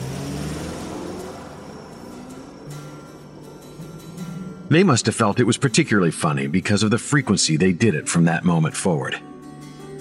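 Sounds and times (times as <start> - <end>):
car engine revving: 0.0 - 6.8
speech: 4.7 - 9.4.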